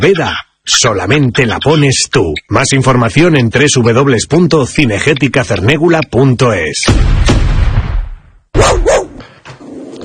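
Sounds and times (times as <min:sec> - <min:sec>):
speech: 0:00.0 - 0:08.9
booming burst of noise: 0:06.9 - 0:08.6
dog barking: 0:08.6 - 0:09.2.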